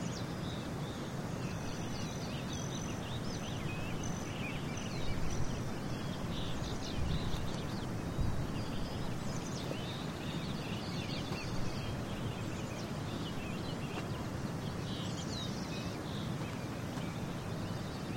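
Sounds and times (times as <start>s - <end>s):
steady low rumbling outdoor wash in a canyon: 0.0s - 18.1s.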